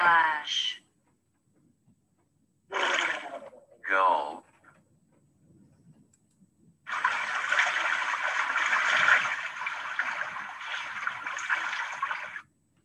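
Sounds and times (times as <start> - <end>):
speech: 0.4 - 0.8
water splashing and rushing in a river: 2.7 - 3.5, 6.9 - 12.4.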